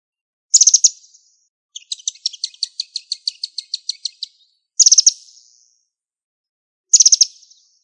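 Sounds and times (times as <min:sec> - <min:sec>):
bird ticking notes: 0:00.5 - 0:01.1, 0:01.8 - 0:05.7, 0:06.9 - 0:07.5
bird buzzy chirps: 0:00.5 - 0:05.8, 0:06.9 - 0:07.8.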